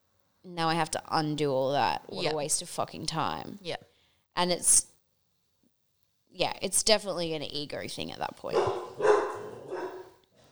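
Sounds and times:
speech: 0.4s - 4.9s, 6.3s - 9.2s
dog barking: 8.5s - 10.2s.

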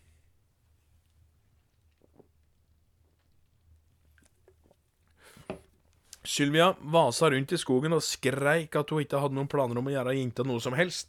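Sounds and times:
person sipping a drink with wet mouth clicks and slurping: 1.4s - 6.2s
person gulping a drink: 1.6s - 5.2s
speech: 6.4s - 11.0s.

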